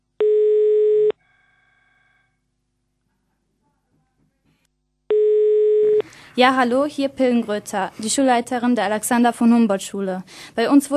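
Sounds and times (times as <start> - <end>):
telephone line tone during a call to the police: 0.2 - 1.1, 5.1 - 6.0
speech: 6.4 - 10.9.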